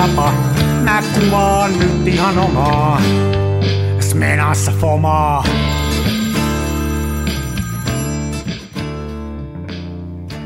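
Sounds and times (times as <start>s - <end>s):
telephone ringing: 0.0s - 2.9s, 5.5s - 9.1s
speech: 1.2s - 5.8s.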